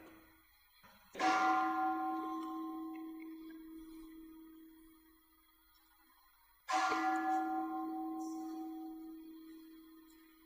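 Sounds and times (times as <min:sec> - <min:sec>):
deep temple bell ringing: 0:01.2 - 0:04.9, 0:06.7 - 0:10.4.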